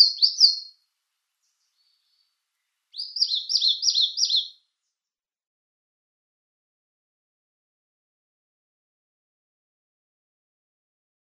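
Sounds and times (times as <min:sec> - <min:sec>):
Eastern Crowned Warbler singing rapid high slurred notes: 0:00.0 - 0:00.8, 0:01.4 - 0:05.0.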